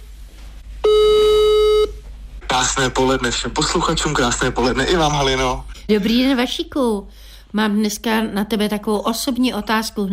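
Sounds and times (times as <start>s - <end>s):
telephone ringback tone while a call to a friend connects: 0.8s - 2.0s
speech: 2.6s - 10.1s.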